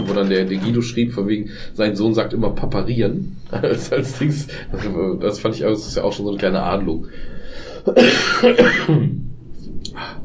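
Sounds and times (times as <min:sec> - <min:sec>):
speech: 0:00.2 - 0:09.2
harsh rasping cough or throat-clearing: 0:07.8 - 0:09.2.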